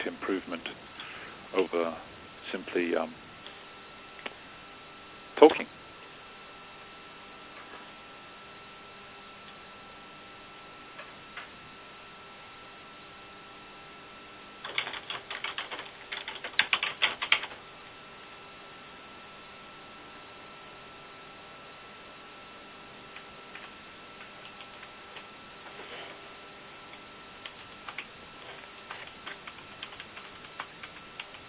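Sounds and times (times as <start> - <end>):
faint steady hum: 0.0 - 31.4
speech: 1.6 - 3.3
rapid clacky keystrokes on a computer keyboard: 14.6 - 17.6, 23.1 - 25.3, 26.9 - 31.4.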